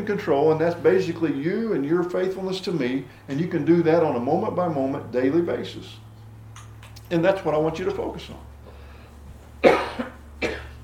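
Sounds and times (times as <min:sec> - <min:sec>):
speech: 0:00.0 - 0:06.0, 0:07.1 - 0:08.5
person with acid reflux giving dry coughs: 0:09.6 - 0:10.8.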